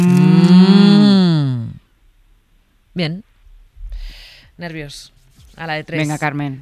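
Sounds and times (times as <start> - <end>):
cow mooing: 0.0 - 1.6
speech: 3.0 - 3.2, 4.6 - 6.6.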